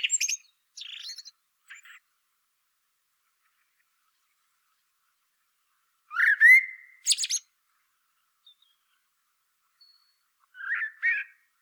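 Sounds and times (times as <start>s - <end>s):
common blackbird Turdus merula giving fluted whistle and warbled phrase: 6.1s - 7.4s, 10.6s - 11.3s.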